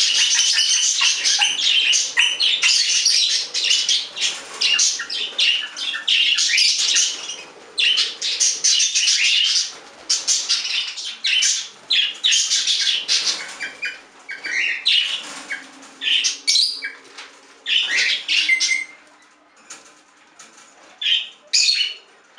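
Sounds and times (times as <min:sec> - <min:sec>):
budgerigar chatter with rasping warbles and quick chirps: 0:00.0 - 0:19.8.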